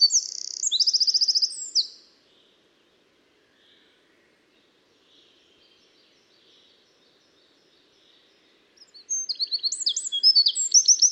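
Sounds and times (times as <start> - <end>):
Eurasian wren singing, Troglodytes troglodytes: 0.0 - 2.0, 8.8 - 11.1.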